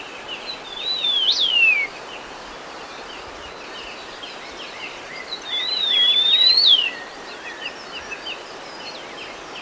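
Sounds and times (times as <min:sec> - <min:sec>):
Sunda bush warbler whistled song: 0:00.0 - 0:02.2, 0:02.8 - 0:09.6.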